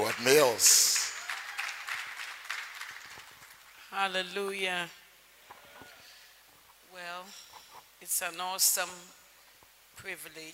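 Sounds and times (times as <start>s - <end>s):
audience at an evening religious gathering applauding: 0.0s - 3.8s
speech: 0.1s - 0.8s, 4.0s - 5.0s, 7.0s - 9.2s, 10.0s - 10.5s.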